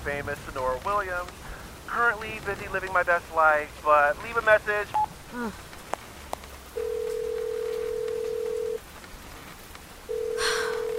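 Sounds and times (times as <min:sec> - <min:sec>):
speech: 0:00.0 - 0:05.7
faint noise: 0:00.0 - 0:10.9
phone line ringback tone waiting for pickup: 0:06.8 - 0:08.8, 0:10.1 - 0:10.9.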